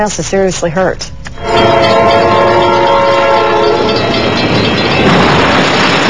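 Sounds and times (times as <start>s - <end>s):
speech: 0.0s - 3.0s
train horn blaring at a railroad crossing: 1.4s - 4.6s
train crashing through a big-rig semi-truck trailer at a railroad crossing: 3.6s - 6.0s.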